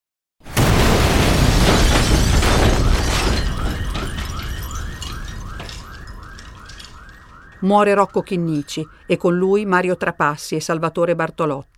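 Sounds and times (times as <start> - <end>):
bomb blast from a Fiat 126 loaded with TNT: 0.5 - 6.9
rumbling debris: 0.5 - 8.9
car alarm wailing in rising sweeps: 1.6 - 10.8
speech: 7.6 - 11.7.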